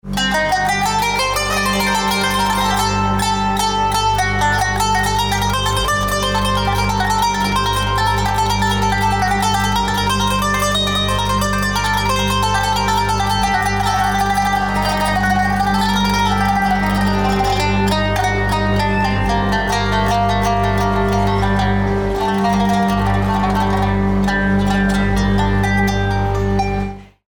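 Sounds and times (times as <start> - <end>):
qanun playing: 0.0 - 27.2.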